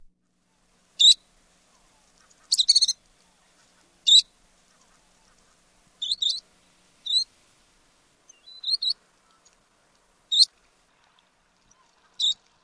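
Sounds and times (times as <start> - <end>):
least sandpiper calls: 0.4 - 7.4, 8.2 - 9.6, 10.3 - 10.5, 11.6 - 12.5.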